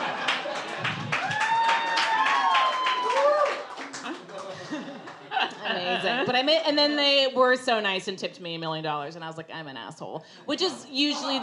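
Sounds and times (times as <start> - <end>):
laughter: 0.0 - 1.4, 3.7 - 6.6
audience whooping and cheering: 0.0 - 4.6
audience applause of many hands clapping: 0.0 - 5.3
speech: 6.3 - 11.4.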